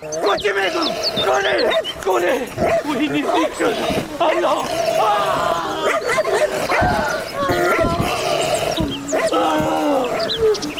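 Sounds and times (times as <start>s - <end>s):
speech: 0.0s - 5.9s
people talking and calling out: 0.0s - 10.7s
dangerous dog barking and yipping excitedly: 1.6s - 4.7s, 5.8s - 9.4s.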